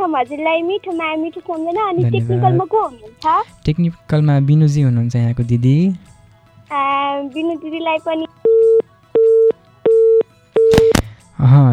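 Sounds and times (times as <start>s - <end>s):
speech: 0.0s - 6.1s, 6.7s - 8.3s
phone disconnect tone beeps as a phone-in caller's line drops: 8.5s - 11.0s.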